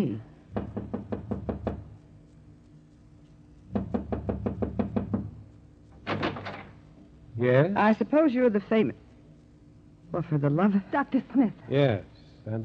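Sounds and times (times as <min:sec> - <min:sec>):
speech: 0:00.0 - 0:00.3, 0:07.4 - 0:09.0, 0:10.1 - 0:12.6
firm rapid knocking on a wooden door: 0:00.5 - 0:02.0, 0:03.7 - 0:06.8.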